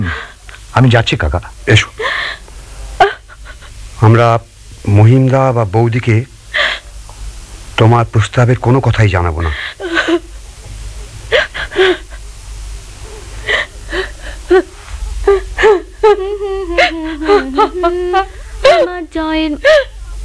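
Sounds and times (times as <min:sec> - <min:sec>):
speech: 0:00.8 - 0:02.1, 0:04.0 - 0:06.3, 0:07.8 - 0:10.3, 0:15.7 - 0:19.9
elderly woman crying and wailing: 0:03.0 - 0:03.8, 0:09.5 - 0:10.3, 0:11.3 - 0:12.2, 0:13.4 - 0:20.0.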